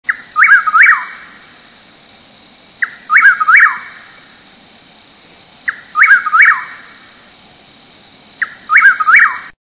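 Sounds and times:
Chuck-will's-widow singing its whistled phrase: 0.1 - 1.8, 2.8 - 4.4, 5.6 - 7.3, 8.4 - 9.6.

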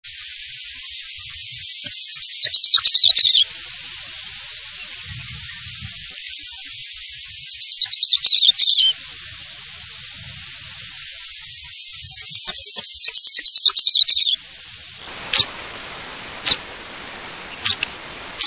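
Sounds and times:
Sprague's pipit: 0.1 - 3.5, 4.7 - 9.0, 10.8 - 14.4, 15.0 - 18.4.

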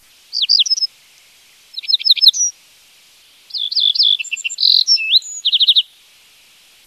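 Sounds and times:
Little bunting singing: 0.0 - 2.6, 3.3 - 6.0.

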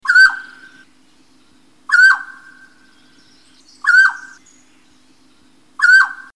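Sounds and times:
mountain quail calling: 0.0 - 0.8, 1.9 - 2.8, 3.8 - 4.4, 5.8 - 6.3.

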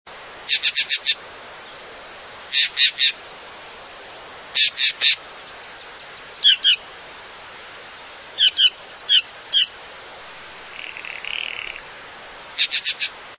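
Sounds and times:
Green Jay calling: 0.5 - 1.8, 2.5 - 3.2, 4.6 - 6.9, 8.4 - 9.8, 10.6 - 11.9, 12.6 - 13.2.

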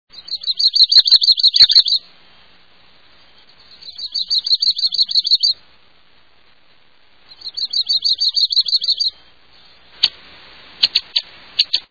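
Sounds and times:
Yellow-rumped Warbler singing: 0.1 - 2.1, 3.1 - 5.6, 7.2 - 10.1.

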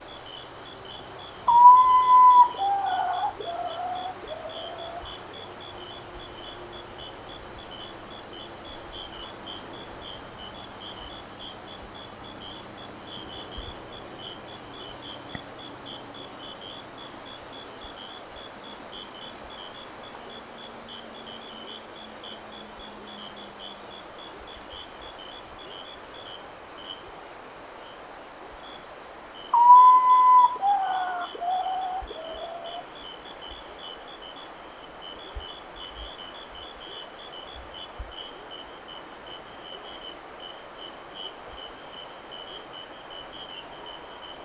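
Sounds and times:
Common Potoo: 1.4 - 5.2, 29.5 - 32.9.

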